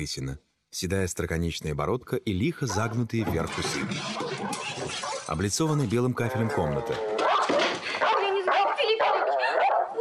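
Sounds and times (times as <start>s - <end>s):
speech: 0.0s - 7.2s
dog yelping and whining: 3.9s - 5.3s, 7.0s - 9.9s.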